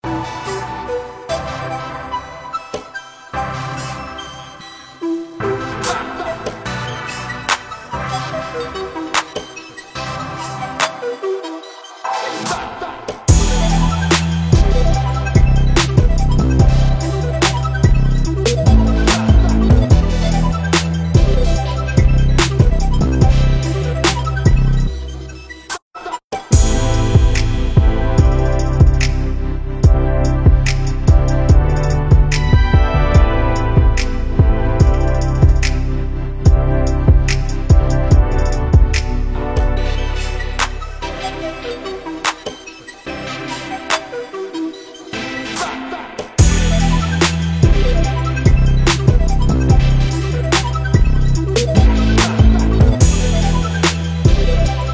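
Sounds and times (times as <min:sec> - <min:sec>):
analog synth music: 0:00.0 - 0:25.7, 0:26.5 - 0:54.9.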